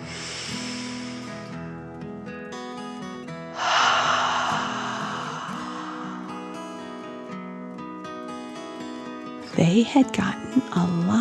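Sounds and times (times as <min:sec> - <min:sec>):
deep breath in and out: 0:00.0 - 0:02.0, 0:03.4 - 0:07.5
speech: 0:09.6 - 0:11.1.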